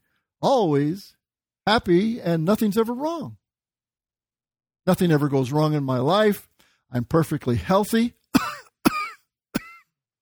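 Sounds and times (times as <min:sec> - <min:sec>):
speech: 0:00.4 - 0:03.4, 0:04.8 - 0:08.4
person coughing: 0:08.4 - 0:09.9.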